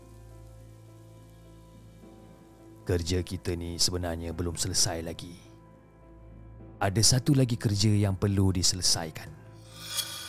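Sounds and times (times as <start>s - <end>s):
rain pattering down on a surface: 0.0s - 4.0s
speech: 2.9s - 5.5s, 6.8s - 9.4s.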